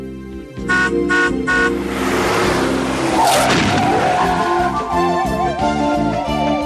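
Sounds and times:
vehicle horn honking: 0.7s - 1.8s
truck tire blowing out: 0.8s - 6.4s
truck tire skidding: 1.4s - 6.5s.

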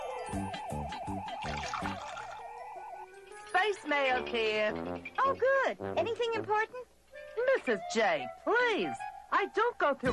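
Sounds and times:
speech: 0.3s - 0.8s, 3.6s - 10.1s
coffee pouring from a voice-activated machine with gurgling: 1.4s - 2.5s.

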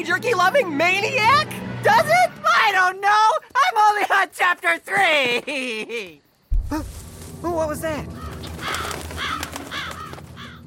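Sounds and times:
speech: 0.0s - 8.2s
crows cawing: 8.1s - 10.6s.

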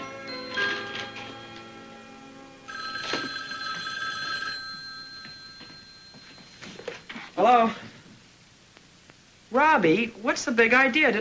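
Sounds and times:
telephone bell ringing: 0.0s - 1.9s, 2.7s - 7.3s
speech: 7.4s - 7.8s, 9.5s - 11.1s.

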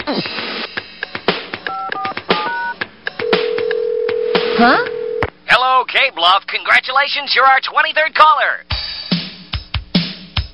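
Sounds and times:
speech: 0.1s - 0.4s, 4.6s - 5.0s, 5.8s - 8.8s
dual-tone beeps of a telephone number being dialed: 1.7s - 5.2s.

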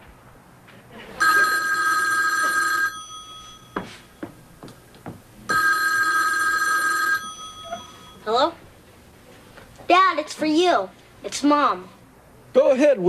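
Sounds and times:
telephone ringing in long trilling bursts: 1.2s - 4.2s, 5.5s - 8.4s
speech: 10.3s - 13.0s.

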